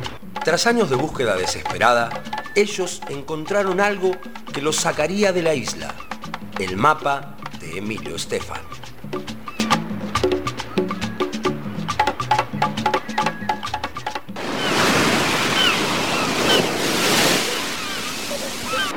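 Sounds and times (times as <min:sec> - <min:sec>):
rhythmic plucked music: 0:00.0 - 0:14.4
sea waves washing around a raft at sea: 0:00.0 - 0:18.9
wind at sea: 0:00.0 - 0:18.9
speech: 0:00.4 - 0:08.8.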